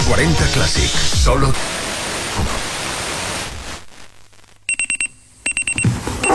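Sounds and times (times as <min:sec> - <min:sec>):
speech: 0:00.2 - 0:01.8
steady rain-like hiss: 0:01.1 - 0:04.7
alarm clock with rapid high electronic beeps: 0:04.7 - 0:06.3.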